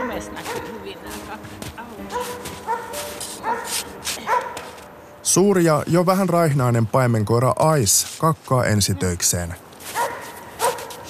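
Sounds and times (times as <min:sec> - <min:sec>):
dogs barking and yipping in a dog park: 0:00.0 - 0:01.2, 0:02.0 - 0:04.8, 0:09.9 - 0:11.0
speech: 0:00.2 - 0:00.7, 0:05.3 - 0:09.7.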